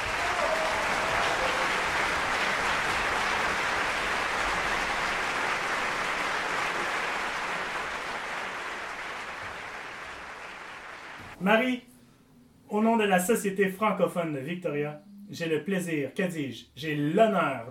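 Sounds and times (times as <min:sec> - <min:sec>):
audience applause for a volunteer receiving an award: 0:00.0 - 0:11.4
speech: 0:11.4 - 0:11.9, 0:12.7 - 0:17.6.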